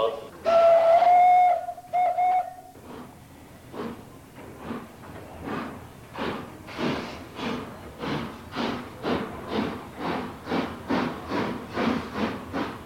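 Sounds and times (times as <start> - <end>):
old steam train whistle: 0.0 - 2.7
old steam train chuffing out of the station at Furth im Wald: 0.0 - 12.8.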